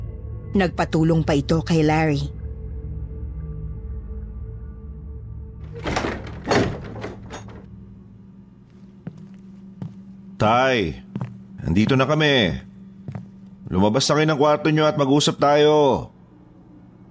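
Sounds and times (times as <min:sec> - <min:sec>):
low steady hum: 0:00.0 - 0:17.0
speech: 0:00.5 - 0:02.4, 0:10.4 - 0:11.0, 0:11.6 - 0:12.7, 0:13.7 - 0:16.1
doors and windows shutting: 0:05.6 - 0:07.7.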